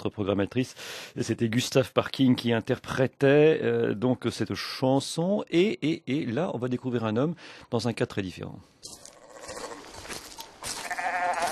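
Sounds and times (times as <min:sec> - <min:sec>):
speech: 0:00.0 - 0:09.0
sheep bleating: 0:09.1 - 0:10.0, 0:10.6 - 0:11.5.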